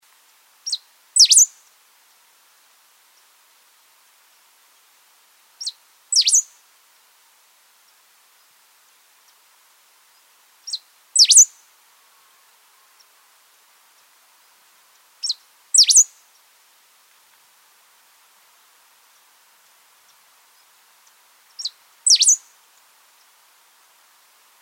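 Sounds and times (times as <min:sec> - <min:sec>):
pale-throated pampa finch calling: 0:00.7 - 0:01.5, 0:05.6 - 0:06.4, 0:10.7 - 0:11.5, 0:15.2 - 0:16.1, 0:21.6 - 0:22.4.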